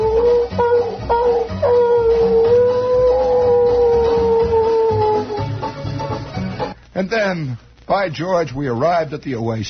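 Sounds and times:
timber wolf howling: 0:00.0 - 0:05.6
speech: 0:07.3 - 0:09.6.

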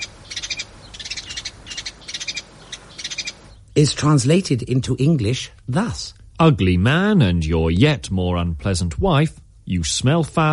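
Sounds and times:
sparrow singing in rapid high thin chirps: 0:00.0 - 0:04.0
speech: 0:03.8 - 0:10.5.

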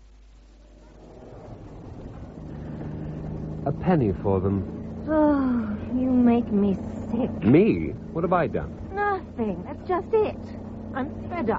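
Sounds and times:
car engine rumbling: 0:00.0 - 0:11.5
speech: 0:03.7 - 0:05.2, 0:06.0 - 0:11.5.

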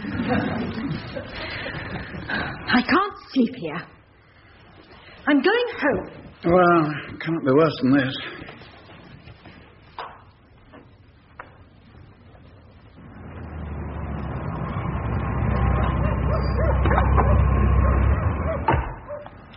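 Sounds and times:
laughter: 0:00.0 - 0:02.3
speech: 0:00.3 - 0:04.0, 0:05.2 - 0:08.4
low rumble: 0:12.8 - 0:18.6
police dogs barking in a garden: 0:16.0 - 0:19.4.

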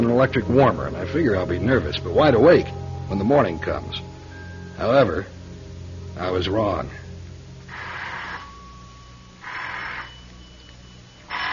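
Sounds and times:
low steady hum: 0:00.0 - 0:11.5
speech: 0:00.1 - 0:04.1, 0:04.8 - 0:05.4, 0:06.2 - 0:07.0
telephone ringing: 0:07.9 - 0:11.5.

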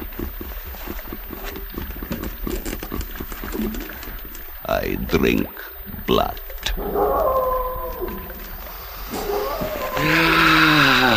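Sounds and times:
speech: 0:04.8 - 0:07.3
wolves howling: 0:06.7 - 0:11.1.

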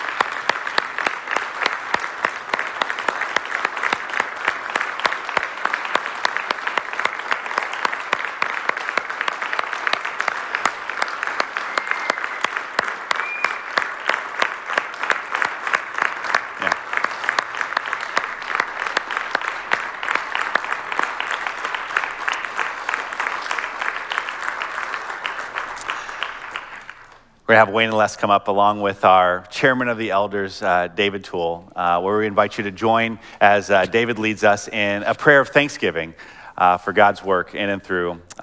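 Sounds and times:
church audience applause: 0:00.0 - 0:27.3
speech: 0:27.5 - 0:38.3.

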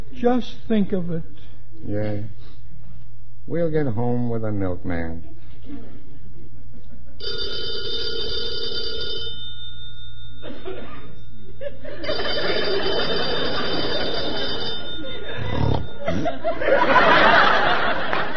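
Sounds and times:
speech: 0:00.2 - 0:02.6, 0:03.5 - 0:06.0
laughter: 0:05.4 - 0:07.3, 0:10.4 - 0:18.3
old-fashioned telephone bell ringing: 0:07.2 - 0:17.8.

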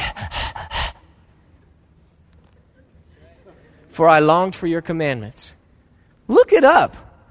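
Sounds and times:
person imitating a dog panting: 0:00.0 - 0:01.1
speech: 0:04.0 - 0:05.6, 0:06.3 - 0:07.1.

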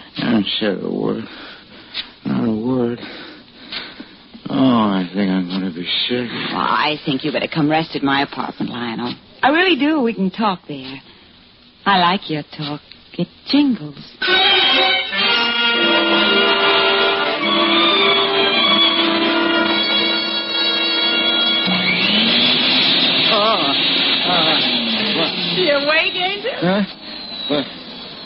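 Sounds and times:
speech: 0:00.4 - 0:01.5, 0:04.6 - 0:11.1, 0:11.8 - 0:15.0, 0:23.7 - 0:24.7, 0:25.6 - 0:27.8
vacuum cleaner running: 0:14.2 - 0:28.2.

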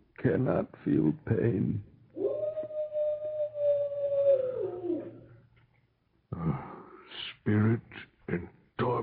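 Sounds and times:
speech: 0:00.2 - 0:01.9, 0:07.2 - 0:09.0
wolf howling: 0:02.2 - 0:05.4.

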